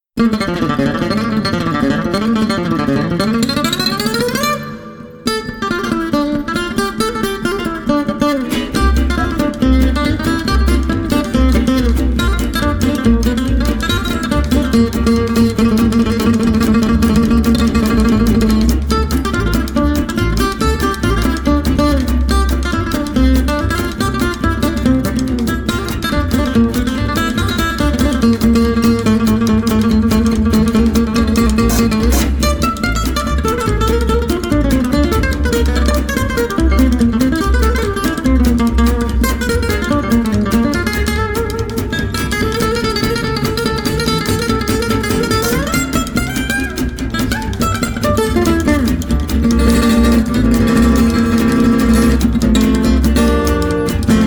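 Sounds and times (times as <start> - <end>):
swing jazz with guitar and saxophone: 0.2 - 54.2.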